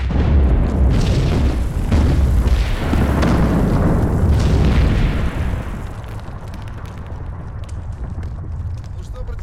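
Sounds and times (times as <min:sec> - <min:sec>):
quarry blasting explosion: 0:00.0 - 0:09.4.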